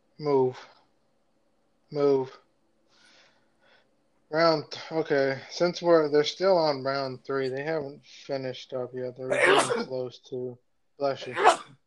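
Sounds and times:
speech: 0:00.2 - 0:00.8, 0:01.9 - 0:02.4, 0:04.3 - 0:11.8
sneeze: 0:09.3 - 0:09.9, 0:11.2 - 0:11.7.

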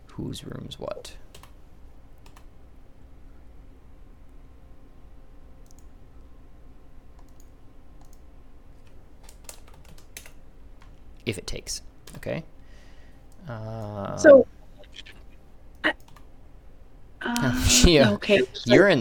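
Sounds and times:
low hum: 0:00.0 - 0:18.9
speech: 0:00.2 - 0:01.3, 0:11.3 - 0:12.6, 0:13.4 - 0:15.1, 0:17.3 - 0:18.9
computer keyboard typing as names are entered into rooms on a map: 0:01.3 - 0:01.6, 0:02.2 - 0:02.5, 0:07.1 - 0:08.2, 0:08.8 - 0:11.0, 0:15.8 - 0:16.3.

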